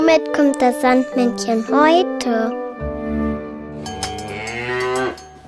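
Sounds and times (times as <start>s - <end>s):
speech: 0.2s - 2.6s
cow mooing: 4.1s - 5.3s.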